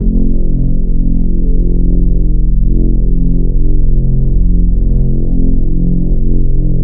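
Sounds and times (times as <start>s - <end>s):
wet Reese drone synth bass: 0.0s - 6.8s.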